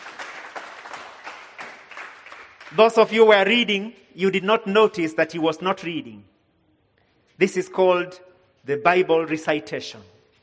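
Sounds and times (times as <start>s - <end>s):
audience applause for a young reciter of Bible verses: 0.0s - 3.0s
speech: 2.7s - 6.3s, 7.4s - 10.2s.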